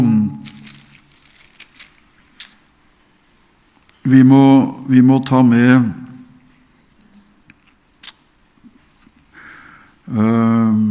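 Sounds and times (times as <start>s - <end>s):
Bible pages being leafed through: 0.4s - 2.6s
speech: 4.1s - 6.0s, 10.1s - 10.8s
short low voice fragment: 10.1s - 10.8s.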